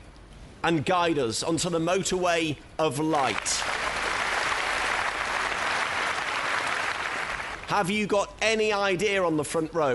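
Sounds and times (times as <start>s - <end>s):
speech: 0.6s - 3.8s, 7.7s - 9.9s
audience clapping: 3.2s - 7.8s.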